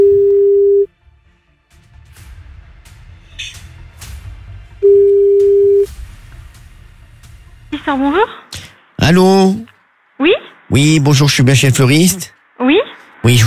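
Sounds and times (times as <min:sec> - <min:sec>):
telephone ringback tone on a call to a florist: 0:00.0 - 0:00.9, 0:04.8 - 0:05.9
speech: 0:07.9 - 0:08.4, 0:09.1 - 0:13.4.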